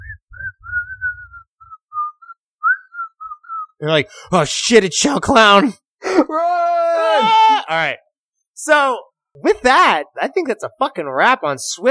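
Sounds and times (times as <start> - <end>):
person whistling a slow eerie tune: 0.0 - 3.7
speech: 3.8 - 6.6, 7.2 - 8.0, 8.6 - 11.8.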